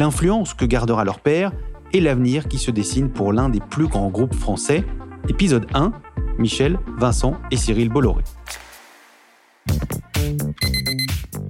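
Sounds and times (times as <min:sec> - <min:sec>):
speech: 0:00.0 - 0:08.7, 0:09.7 - 0:10.8
phone countdown app alarm ringing with repeating electronic tones: 0:10.6 - 0:11.2.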